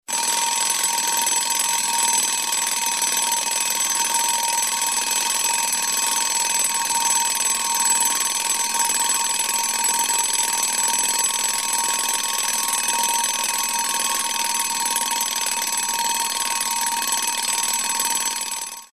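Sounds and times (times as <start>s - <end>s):
old alarm clock ringing: 0.1s - 18.9s.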